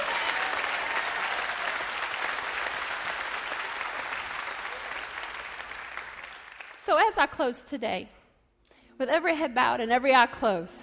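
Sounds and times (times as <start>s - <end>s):
crowd applauding: 0.0s - 6.8s
speech: 6.9s - 8.2s, 9.0s - 10.8s.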